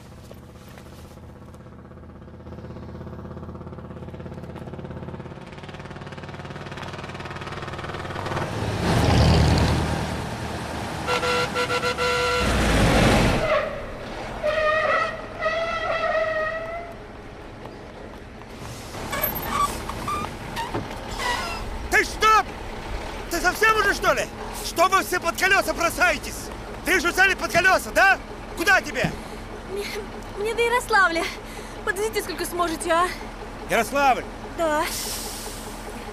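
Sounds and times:
cars and trucks passing on a highway: 0:00.0 - 0:36.1
car horn toot: 0:11.0 - 0:12.6
speech: 0:24.8 - 0:26.4, 0:27.0 - 0:29.2, 0:29.8 - 0:31.4, 0:32.0 - 0:35.1.

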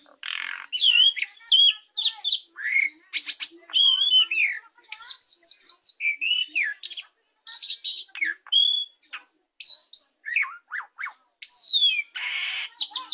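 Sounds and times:
Oriental magpie-robin giving whistled phrases: 0:00.0 - 0:13.1.

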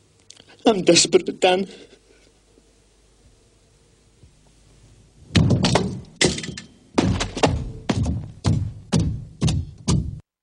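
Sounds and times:
speech: 0:00.7 - 0:01.9
head banging against a confessional wall: 0:07.0 - 0:10.2.

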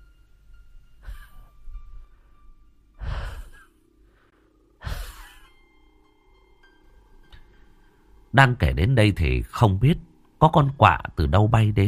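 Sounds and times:
asthmatic wheezing breaths after smoking pipe tobacco: 0:01.0 - 0:02.4, 0:03.0 - 0:05.6
speech: 0:08.4 - 0:11.8.

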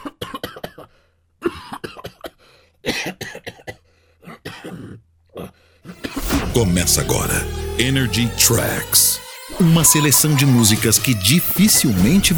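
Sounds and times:
person coughing: 0:00.0 - 0:02.3, 0:02.9 - 0:05.0
speech: 0:03.0 - 0:03.2, 0:06.6 - 0:12.3.

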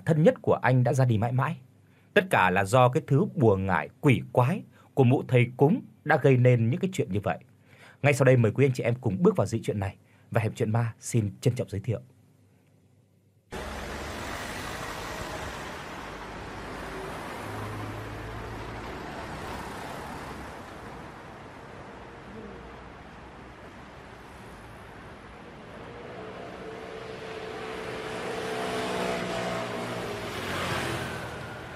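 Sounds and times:
speech: 0:00.1 - 0:12.1
car pulling away through noisy city traffic: 0:13.5 - 0:31.7
dense continuous rumble of city road vehicles: 0:13.5 - 0:31.7.

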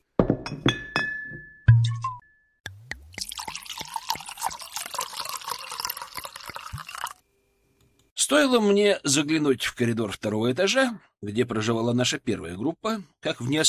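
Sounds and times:
bottle clinking against a faceted drinking glass: 0:00.4 - 0:02.2
liquid gurgling and splashing as it is poured: 0:03.1 - 0:07.2
speech: 0:08.3 - 0:13.6.

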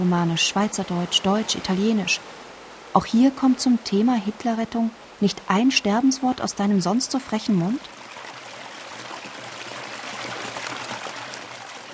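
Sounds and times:
speech: 0:00.0 - 0:08.0
water trickling from a fountain at the edge of a mountain village: 0:07.8 - 0:11.9.

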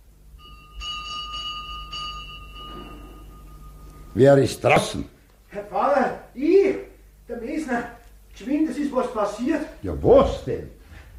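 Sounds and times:
pulled door bell ringing at a village parsonage at dawn: 0:00.4 - 0:04.2
speech: 0:04.2 - 0:05.1, 0:07.7 - 0:10.8.

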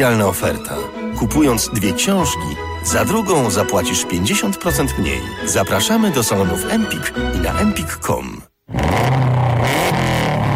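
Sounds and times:
speech: 0:00.0 - 0:09.2
280-horsepower rally car engine revving: 0:08.7 - 0:10.5.

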